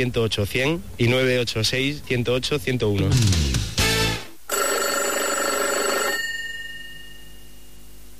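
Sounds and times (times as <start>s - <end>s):
speech: 0.0s - 3.5s
telephone ringing with trilling bell: 4.5s - 7.8s.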